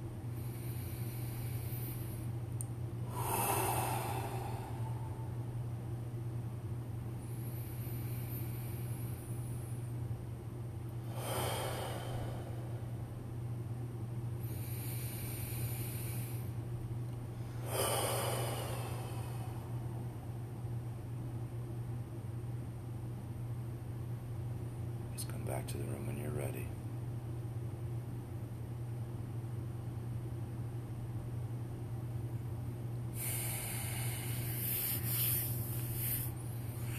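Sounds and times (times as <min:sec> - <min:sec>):
steady low hum: 0:00.0 - 0:36.9
slow deep breaths: 0:00.3 - 0:02.4, 0:03.0 - 0:05.6, 0:07.2 - 0:10.0, 0:10.9 - 0:13.1, 0:14.4 - 0:16.6, 0:17.3 - 0:20.6, 0:33.1 - 0:36.9.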